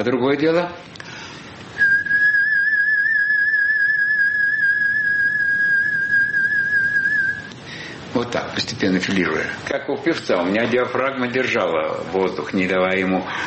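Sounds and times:
speech: 0.0s - 1.0s, 8.2s - 13.4s
human lip whistling a steady clear note: 1.8s - 7.5s.

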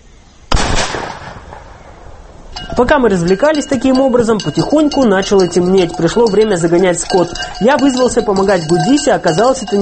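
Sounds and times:
single loud shotgun blast fired at an old bucket: 0.5s - 2.2s
speech: 2.6s - 9.7s.

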